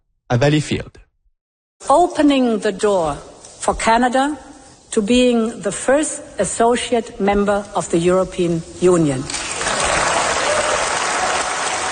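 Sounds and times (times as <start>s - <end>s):
speech: 0.3s - 1.0s, 1.8s - 9.5s
ovation from members of parliament at a European Union session: 9.4s - 11.8s.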